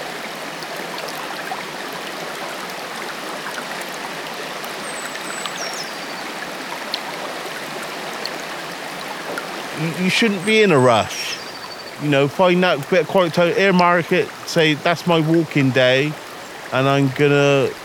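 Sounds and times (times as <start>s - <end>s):
flowing stream babbling: 0.0s - 17.8s
birds chirping: 4.7s - 6.6s, 9.2s - 14.9s
speech: 9.8s - 11.4s, 12.0s - 17.8s.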